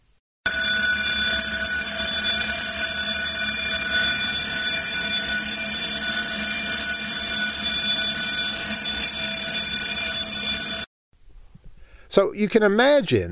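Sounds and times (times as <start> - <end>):
fire alarm bell ringing: 0.5 - 10.9
speech: 12.2 - 13.3.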